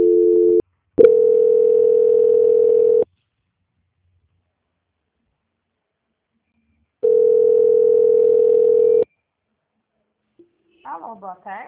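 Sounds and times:
telephone line tone during a call transfer: 0:00.0 - 0:03.0, 0:07.0 - 0:09.1
speech: 0:11.2 - 0:11.6.

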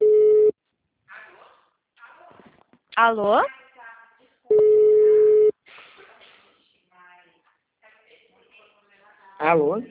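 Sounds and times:
telephone tone after a dropped call: 0:00.0 - 0:00.5, 0:04.5 - 0:05.5
speech: 0:03.0 - 0:03.6, 0:09.4 - 0:09.8.

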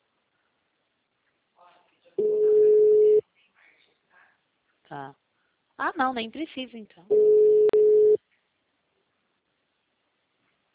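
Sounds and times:
telephone ringback tone while placing a phone call: 0:02.2 - 0:03.2, 0:07.1 - 0:08.2
speech: 0:04.9 - 0:05.2, 0:05.8 - 0:07.4.

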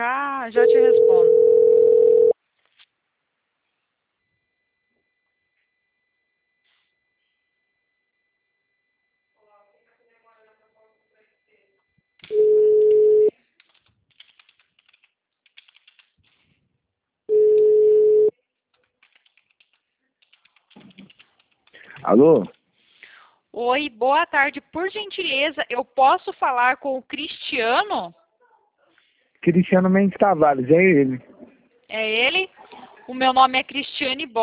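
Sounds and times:
speech: 0:00.0 - 0:01.8, 0:22.2 - 0:22.6, 0:23.6 - 0:28.2, 0:29.4 - 0:31.3, 0:31.9 - 0:32.5, 0:33.1 - 0:34.4
telephone line tones while placing an outgoing call: 0:00.6 - 0:02.4, 0:12.3 - 0:13.3, 0:17.3 - 0:18.3
faint clicks and tapping: 0:13.6 - 0:16.6, 0:18.6 - 0:22.6.

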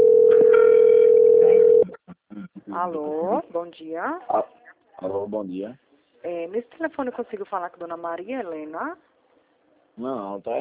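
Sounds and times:
telephone ringback tone of an outgoing call: 0:00.0 - 0:01.8
speech: 0:02.8 - 0:09.1, 0:10.0 - 0:10.5.

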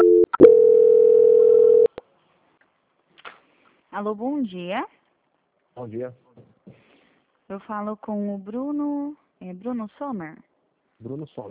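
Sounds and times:
telephone tone during a call transfer to a quality-control department: 0:00.0 - 0:01.9
speech: 0:04.0 - 0:05.0, 0:05.8 - 0:06.8, 0:07.5 - 0:11.5.

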